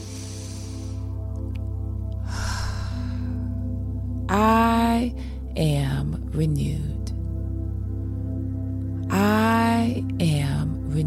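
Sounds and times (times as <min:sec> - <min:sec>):
deep inhaled breath during a guided affirmation: 0:00.0 - 0:01.2, 0:02.2 - 0:03.6
low sustained musical drone: 0:00.0 - 0:11.0
speech: 0:04.3 - 0:07.0.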